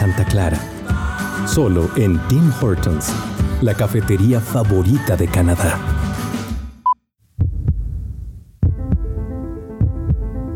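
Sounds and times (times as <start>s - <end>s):
speech: 0.1s - 0.8s, 1.4s - 5.9s
human heartbeat: 7.4s - 9.2s, 9.8s - 10.4s.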